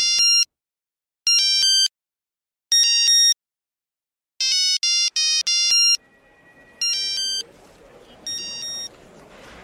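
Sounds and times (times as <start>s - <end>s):
new mobile phone ringing with an electronic song ringtone: 0.0s - 0.5s, 1.3s - 1.9s, 2.7s - 3.4s, 4.4s - 7.5s, 8.2s - 8.9s.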